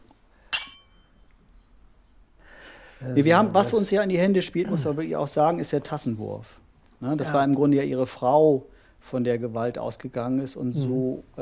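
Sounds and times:
glasses clinking in a toast: 0.5 - 1.2
soft breathy exhale: 2.4 - 3.0
speech: 3.0 - 11.4.

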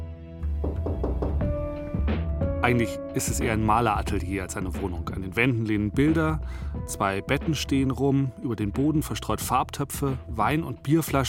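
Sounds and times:
firm knocks on a wooden door: 0.5 - 1.6
speech: 2.6 - 11.2.

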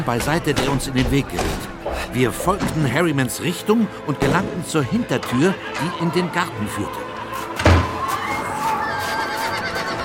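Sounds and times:
speech: 0.0 - 7.2
brown horse hitched to a one-axle carriage whinnying: 8.2 - 10.0.

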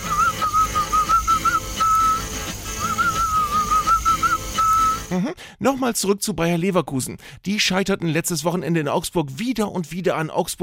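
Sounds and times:
person whistling a wavering tune: 0.0 - 5.2
steady rhythmic musical backing: 0.0 - 5.2
speech: 5.1 - 10.6.

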